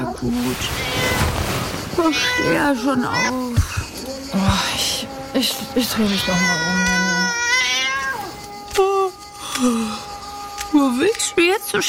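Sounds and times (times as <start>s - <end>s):
speech: 0.2s - 0.9s, 2.0s - 7.0s, 8.8s - 9.0s, 9.6s - 10.0s, 10.7s - 11.8s
cat meowing: 0.6s - 1.4s, 2.0s - 3.6s, 5.9s - 8.3s.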